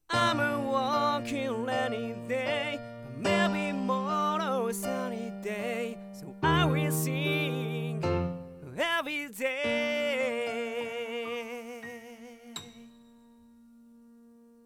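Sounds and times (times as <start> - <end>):
piano in dual mono mix: 0.0 - 14.6.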